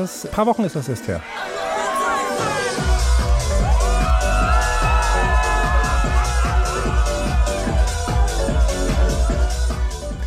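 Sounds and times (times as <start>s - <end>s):
speech: 0.0s - 1.6s
crowd of hundreds cheering and screaming at a DJ set in Amsterdam: 1.2s - 10.2s
crowd whoops and shouts: 1.6s - 10.0s
pounding dance beat with steady bass thumps: 2.4s - 10.2s.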